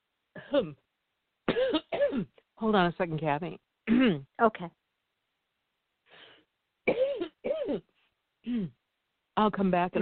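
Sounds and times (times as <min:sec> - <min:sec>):
person coughing after choking on a breath: 0:00.4 - 0:00.8, 0:01.5 - 0:02.4, 0:03.9 - 0:04.2, 0:06.9 - 0:07.9, 0:08.5 - 0:08.8
speech: 0:00.5 - 0:00.8, 0:01.5 - 0:04.8, 0:07.7 - 0:08.8, 0:09.4 - 0:10.0.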